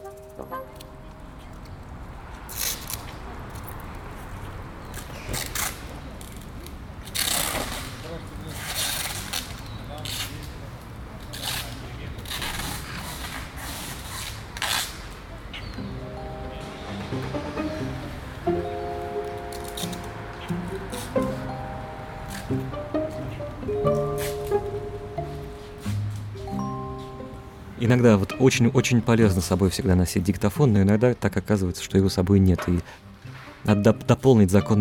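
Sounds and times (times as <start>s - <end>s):
faint noise: 0.0s - 34.7s
adhesive tape pulled off a roll: 2.5s - 3.1s, 5.3s - 10.4s, 11.3s - 15.2s
speech: 27.9s - 34.7s.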